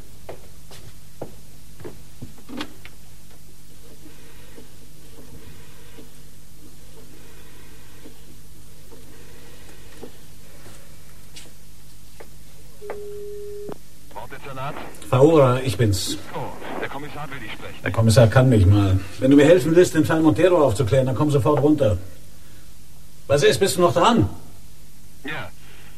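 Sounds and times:
telephone line tone: 12.8s - 13.8s
speech: 14.6s - 16.3s, 17.1s - 22.2s, 23.3s - 24.4s.

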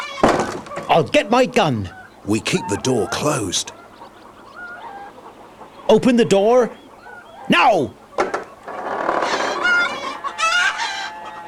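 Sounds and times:
agitated chickens clucking and squawking: 0.0s - 11.4s
speech: 1.0s - 3.7s, 5.9s - 6.8s, 7.5s - 8.0s.

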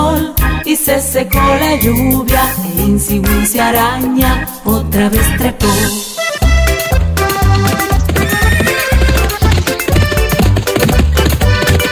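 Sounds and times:
loud busy children's farm song with steady rhythmic beat: 0.0s - 6.5s
speech: 0.8s - 6.1s
Percheron horse neighing: 7.4s - 11.8s.

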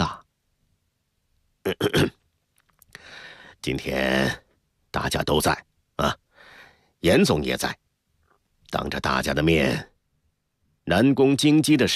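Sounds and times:
throaty cough in a radio drama: 1.7s - 2.2s
speech: 3.6s - 6.2s, 7.0s - 7.8s, 8.7s - 9.9s, 10.9s - 11.9s.

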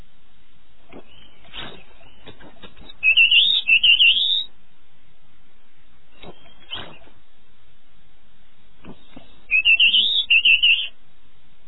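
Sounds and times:
canary singing a high warbling trill in the early morning: 3.0s - 4.5s, 9.5s - 11.0s.

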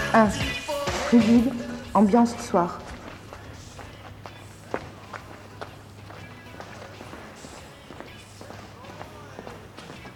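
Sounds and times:
speech: 0.1s - 2.8s
footsteps of several people walking: 2.3s - 10.1s.

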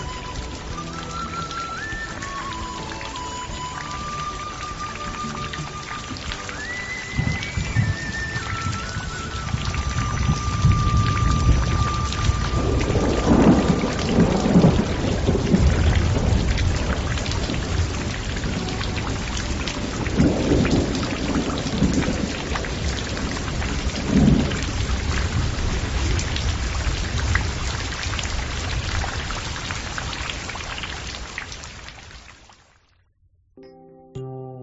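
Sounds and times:
steady rain pattering on a bamboo screen: 0.0s - 33.0s
low thunder-like rumbles: 7.1s - 30.2s.

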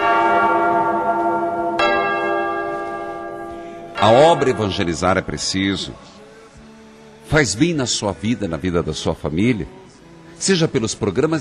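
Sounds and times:
church bell rung by the sacristan: 0.0s - 6.2s
speech: 4.0s - 6.1s, 7.3s - 9.8s, 10.4s - 11.3s.

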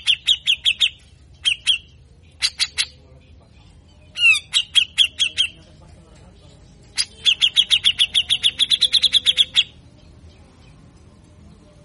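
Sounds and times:
grey-cheeked bulbul giving harsh chirps and rasping sweeps: 0.0s - 3.1s, 4.1s - 5.6s, 6.9s - 9.8s.

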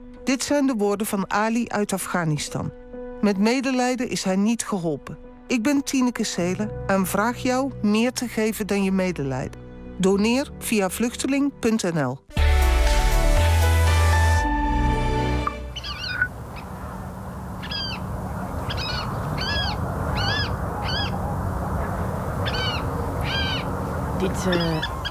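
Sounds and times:
speech: 0.3s - 12.4s, 24.2s - 24.9s
water rail calling in reed beds: 12.6s - 25.0s
rustling reedy background: 15.7s - 25.0s.

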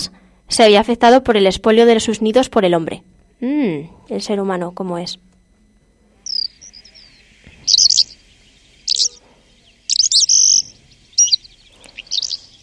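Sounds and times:
speech: 0.0s - 5.3s
faint steady hum: 0.0s - 12.6s
calandra lark singing in cereal farmland with fallow fields: 6.2s - 12.6s.

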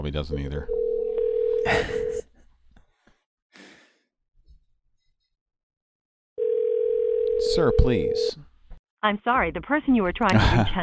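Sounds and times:
speech: 0.0s - 0.8s, 1.6s - 2.3s, 7.6s - 10.8s
telephone tone as a call is placed: 0.7s - 2.2s, 6.4s - 8.3s.

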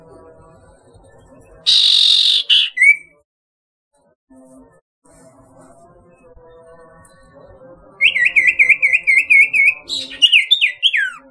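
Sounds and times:
barn owl hissing: 1.7s - 2.8s
barn owl short rising squeak: 1.7s - 3.1s, 8.0s - 11.2s.

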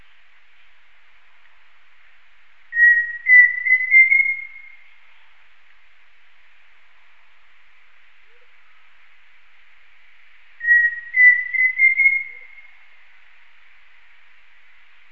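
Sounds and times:
Pheasant cuckoo Dromococcyx phasianellus whistled call: 2.8s - 4.8s, 10.6s - 12.8s.

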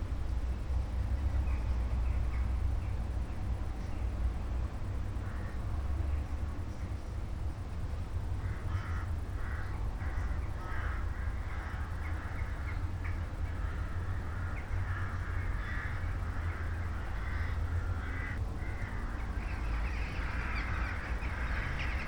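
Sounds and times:
constant low-pitched background rumble: 0.0s - 22.0s
flock of crows cawing in the evening sky: 8.4s - 22.0s.

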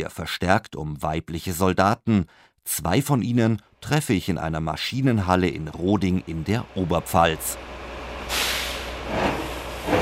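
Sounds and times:
speech: 0.0s - 8.5s
military tractor unit and armored vehicle engine rumble: 5.5s - 10.0s
air-brake hiss of a military tractor unit: 8.3s - 10.0s.

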